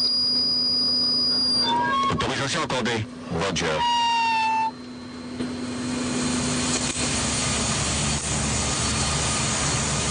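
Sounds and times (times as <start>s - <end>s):
brief tone: 0.0s - 2.6s, 3.5s - 6.5s
speech: 2.4s - 4.1s
aircraft engine powering up before takeoff on a military reconnaissance flight: 3.1s - 10.0s.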